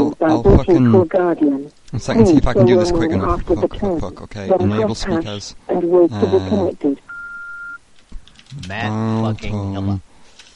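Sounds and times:
speech: 0:00.2 - 0:07.0, 0:08.5 - 0:10.1
steady electronic telephone tone from an online dial tone generator: 0:06.2 - 0:07.8.

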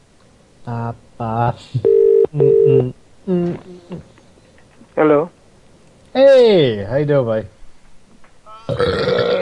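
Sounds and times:
speech: 0:00.7 - 0:04.1, 0:05.0 - 0:05.3, 0:06.9 - 0:07.6
loud rumbling throaty burp: 0:08.6 - 0:09.3.

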